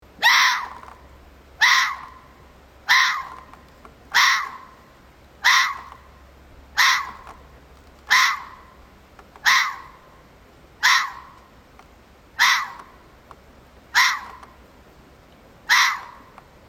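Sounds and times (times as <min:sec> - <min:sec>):
fox calling: 0:00.1 - 0:10.2, 0:10.8 - 0:11.5, 0:12.3 - 0:13.1, 0:13.8 - 0:14.7, 0:15.6 - 0:16.4.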